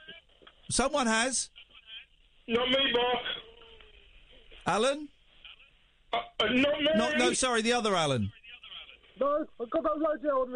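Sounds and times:
radio playing tinny voices in the background: 0:00.0 - 0:10.5
speech: 0:00.7 - 0:01.6, 0:02.5 - 0:03.3, 0:04.7 - 0:05.1, 0:06.1 - 0:08.4, 0:09.2 - 0:10.5.

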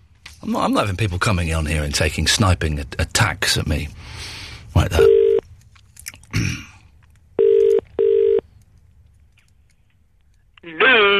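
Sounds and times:
speech: 0:00.4 - 0:05.2
loud steady electronic beeps of the telephone line tone: 0:05.0 - 0:05.4, 0:07.4 - 0:08.4.

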